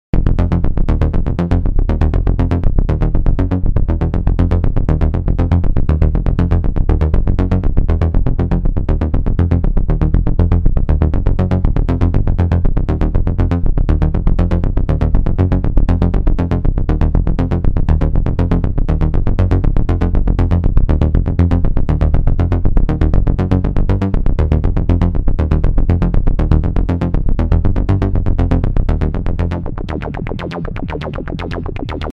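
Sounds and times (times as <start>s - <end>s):
bass synth: 0.0s - 32.1s.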